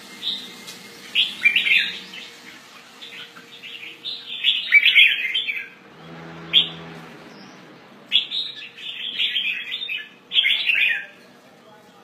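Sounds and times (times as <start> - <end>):
Red-whiskered bulbul Pycnonotus jocosus chattering calls: 1.1 - 5.8, 6.5 - 11.2.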